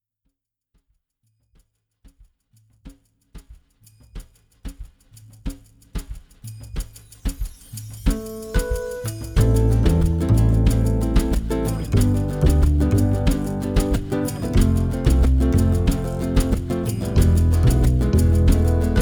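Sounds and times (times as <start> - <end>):
flamenco music: 8.1 - 19.0.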